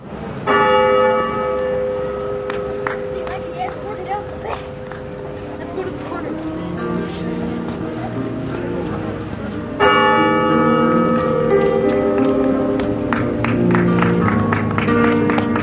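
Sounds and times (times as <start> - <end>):
large church tower bell striking: 0.4 - 15.6
faint shuffling: 2.6 - 13.4.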